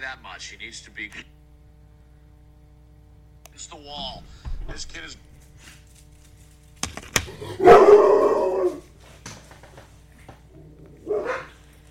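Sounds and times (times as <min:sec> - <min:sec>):
speech: 0:00.0 - 0:01.4, 0:03.6 - 0:05.8, 0:07.2 - 0:08.8
dog barking: 0:07.4 - 0:08.8, 0:11.0 - 0:11.6.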